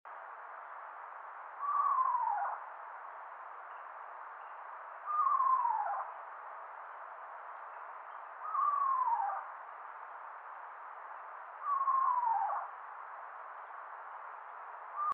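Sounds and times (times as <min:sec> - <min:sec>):
Eastern screech owl Megascops asio calling: 0:01.6 - 0:02.7, 0:05.0 - 0:06.2, 0:08.4 - 0:09.6, 0:11.6 - 0:12.8.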